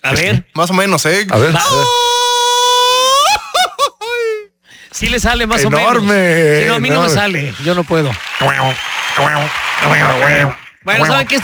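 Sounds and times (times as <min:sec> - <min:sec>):
speech: 0:00.0 - 0:02.1, 0:05.0 - 0:11.4
person attempting a mariachi grito: 0:01.6 - 0:05.8
laughter: 0:02.9 - 0:07.8.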